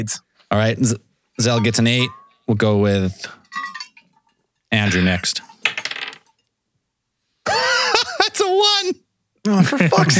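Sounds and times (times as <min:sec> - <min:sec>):
speech: 0:00.0 - 0:03.8, 0:04.7 - 0:05.5, 0:08.6 - 0:10.1
dice clattering across a hard tabletop: 0:05.6 - 0:06.3
laughter: 0:07.5 - 0:08.5.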